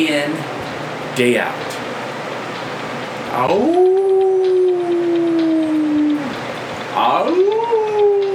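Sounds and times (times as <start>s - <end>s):
speech: 1.2s - 1.7s, 3.3s - 4.0s
dog howling: 3.4s - 8.3s.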